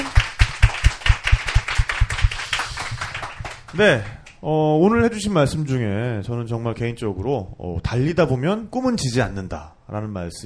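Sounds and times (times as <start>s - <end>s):
small group clapping hands: 0.0s - 4.4s
speech: 3.8s - 10.4s.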